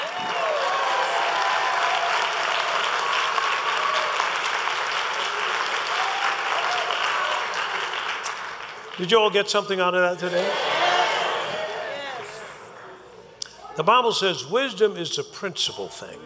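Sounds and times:
crowd clapping: 0:00.0 - 0:12.5
speech: 0:09.0 - 0:10.7, 0:13.8 - 0:16.2.

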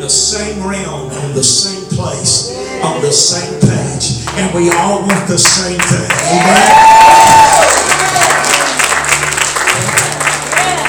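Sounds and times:
speech: 0:00.0 - 0:07.7
audience clapping: 0:04.2 - 0:10.8
faint cheers: 0:06.2 - 0:08.8.

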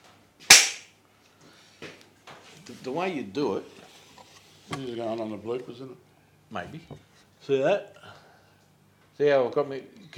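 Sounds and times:
sharp loud hand slap: 0:00.5 - 0:00.9
speech: 0:02.7 - 0:03.8, 0:04.7 - 0:08.0, 0:09.2 - 0:10.1.

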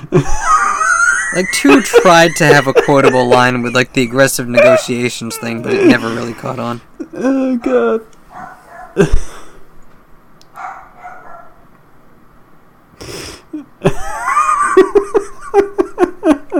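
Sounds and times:
speech: 0:00.0 - 0:00.6, 0:01.3 - 0:08.1, 0:09.0 - 0:09.3
laughter: 0:00.0 - 0:07.9, 0:09.0 - 0:09.4, 0:13.5 - 0:16.5
female dog barking: 0:04.6 - 0:05.5, 0:08.3 - 0:09.0, 0:10.5 - 0:11.6.

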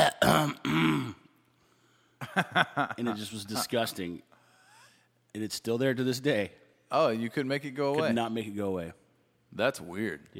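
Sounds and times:
big gravelly throat clearing: 0:00.0 - 0:01.4
speech: 0:00.4 - 0:01.2, 0:02.2 - 0:04.3, 0:05.3 - 0:10.3.

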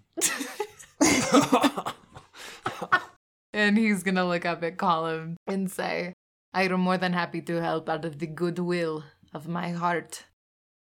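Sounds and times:
person coughing in rough raspy fits: 0:00.2 - 0:01.9
laughter: 0:00.2 - 0:03.2
speech: 0:01.3 - 0:01.7, 0:03.6 - 0:10.3.

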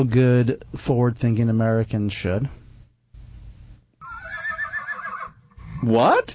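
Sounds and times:
speech: 0:00.0 - 0:02.6, 0:05.8 - 0:06.3
horse quavering whinny: 0:04.0 - 0:06.0.

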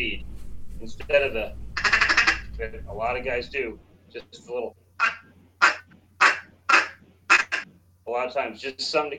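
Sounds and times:
speech: 0:00.0 - 0:01.6, 0:02.6 - 0:05.3, 0:08.1 - 0:09.1
faint low hum: 0:00.0 - 0:09.1
nasal duck quacks from a duck call: 0:01.8 - 0:02.5, 0:05.0 - 0:07.7.

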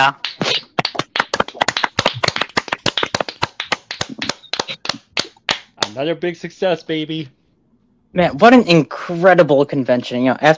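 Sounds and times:
speech: 0:00.0 - 0:00.6, 0:06.0 - 0:07.4, 0:08.1 - 0:10.5
round of applause from a small group: 0:00.0 - 0:06.0.

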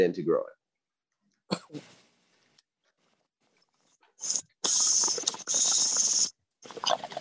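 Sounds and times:
slight cough: 0:01.5 - 0:01.9
hissing inhale of cannabis through a dab rig: 0:04.2 - 0:07.0.

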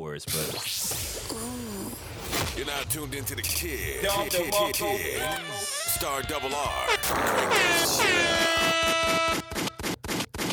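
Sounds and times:
speech: 0:00.2 - 0:09.4
punchy rhythmic thumps: 0:00.3 - 0:10.5
loud blaring air horn sound effect blast with downward pitch sweep: 0:05.1 - 0:09.6.

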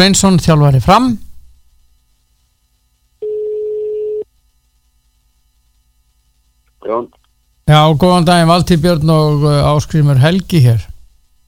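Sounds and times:
speech: 0:00.0 - 0:01.2, 0:06.9 - 0:10.9
faint hiss: 0:00.0 - 0:11.4
telephone tone as a phone call is placed: 0:03.2 - 0:04.3.

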